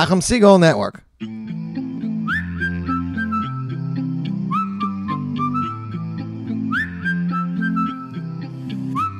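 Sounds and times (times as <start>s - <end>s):
speech: 0.0s - 1.6s
whistle rising in short upward chirps: 2.2s - 9.1s.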